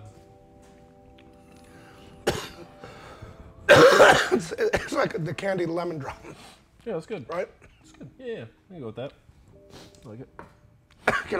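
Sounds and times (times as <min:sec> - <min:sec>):
person coughing fit: 0:02.2 - 0:02.7, 0:03.7 - 0:05.2, 0:11.0 - 0:11.3
speech: 0:03.7 - 0:09.2, 0:10.0 - 0:10.5, 0:11.2 - 0:11.3.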